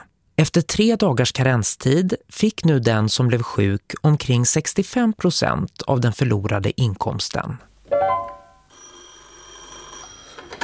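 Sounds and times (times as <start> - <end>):
speech: 0.4 - 7.7
old telephone bell ringing with a metallic trill: 7.9 - 10.6.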